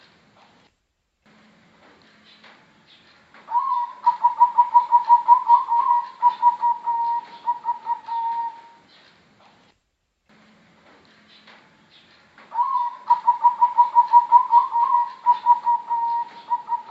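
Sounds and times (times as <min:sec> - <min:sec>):
zebra dove singing bubbling coos: 0:03.5 - 0:08.8, 0:12.5 - 0:16.8.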